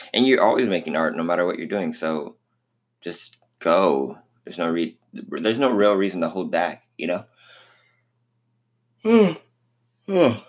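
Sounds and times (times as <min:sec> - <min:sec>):
speech: 0:00.2 - 0:02.4, 0:03.0 - 0:07.3, 0:09.0 - 0:09.4, 0:10.1 - 0:10.4
breathy voiced yawn: 0:09.0 - 0:09.5, 0:10.1 - 0:10.4.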